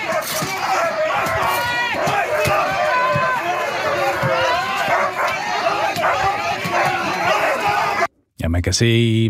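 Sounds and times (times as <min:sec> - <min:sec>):
dogs barking excitedly at a police protest: 0:00.0 - 0:08.1
loud chaotic crowd of demonstrators: 0:00.0 - 0:08.1
people shouting during a police action: 0:00.0 - 0:08.1
speech: 0:08.6 - 0:09.2.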